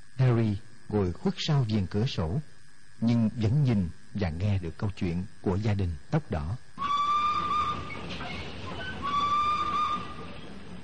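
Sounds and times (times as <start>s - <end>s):
speech: 0.4s - 6.6s
train whistle at a station: 6.8s - 10.8s.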